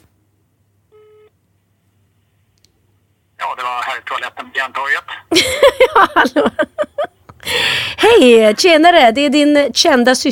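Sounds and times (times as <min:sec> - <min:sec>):
quiet hum: 0:00.0 - 0:10.2
short telephone tone: 0:00.9 - 0:01.3
speech: 0:03.7 - 0:06.8, 0:07.4 - 0:10.2
laughter: 0:05.3 - 0:07.2.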